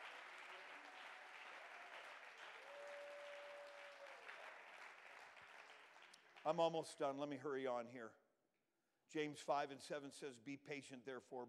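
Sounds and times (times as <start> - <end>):
audience clapping hands: 0.0 - 6.8
speech: 6.4 - 8.2, 9.1 - 11.4.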